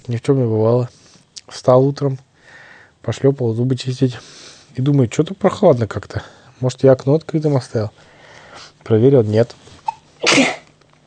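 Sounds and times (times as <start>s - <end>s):
speech: 0.1s - 2.3s, 3.0s - 8.1s, 8.8s - 10.6s
sharp sneeze: 9.8s - 10.7s.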